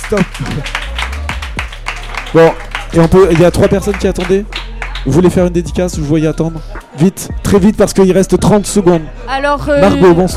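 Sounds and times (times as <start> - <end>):
crowd applauding for a man: 0.0 - 5.5
speech: 0.1 - 0.8, 2.3 - 10.3.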